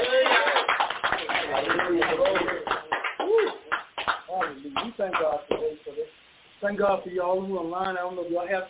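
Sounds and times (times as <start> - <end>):
audience clapping hands in a room: 0.0 - 5.6
speech: 6.7 - 8.6.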